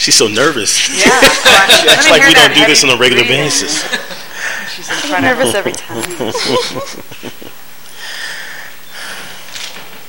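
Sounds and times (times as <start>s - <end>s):
speech: 0.0s - 4.2s, 4.8s - 7.4s
laughter: 0.9s - 7.6s
woman breathing heavily: 7.9s - 9.5s.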